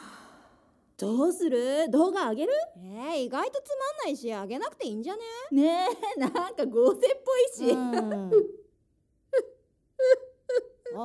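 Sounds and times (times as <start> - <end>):
speech: 1.0 - 8.6, 9.3 - 11.0
middle-aged woman sobbing: 7.6 - 8.6, 9.3 - 11.0.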